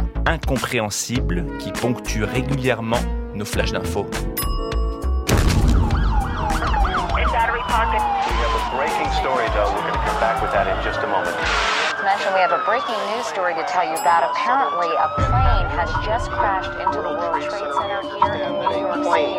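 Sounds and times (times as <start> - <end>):
speech: 0.3 - 4.5, 7.7 - 19.3
busy street commotion: 5.3 - 19.3
emergency vehicle sirens wailing: 5.6 - 19.3
indistinct voices: 6.5 - 19.3.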